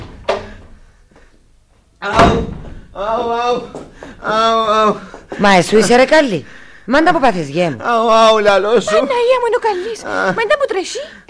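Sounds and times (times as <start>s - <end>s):
door being banged and forced open: 0.0s - 0.8s, 2.1s - 4.6s
speech: 2.0s - 11.2s
laughter: 7.9s - 10.9s.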